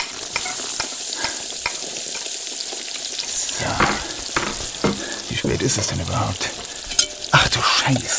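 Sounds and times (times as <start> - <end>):
onions sizzling in a hot pan: 0.0 - 8.1
speech: 5.5 - 6.6, 7.4 - 8.1.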